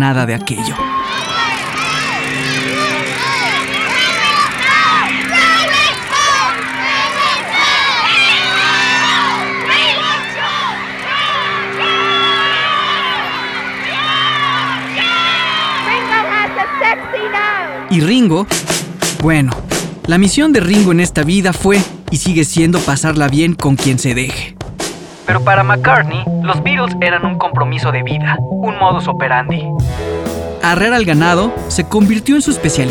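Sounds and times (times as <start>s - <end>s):
speech: 0.0s - 1.3s, 17.2s - 24.6s, 25.3s - 30.0s, 30.6s - 32.8s
large crowd of fans screaming and shrieking: 0.7s - 18.4s.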